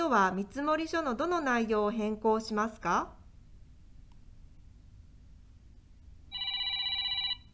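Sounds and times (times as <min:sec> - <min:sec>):
speech: 0:00.1 - 0:03.2
telephone ringing with an electronic burst: 0:06.3 - 0:07.5.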